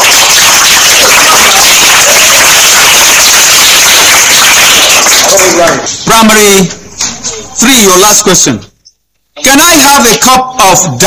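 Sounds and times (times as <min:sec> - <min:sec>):
audience clapping: 0:00.0 - 0:06.3
speech: 0:05.6 - 0:06.8, 0:07.6 - 0:08.7, 0:09.5 - 0:11.0.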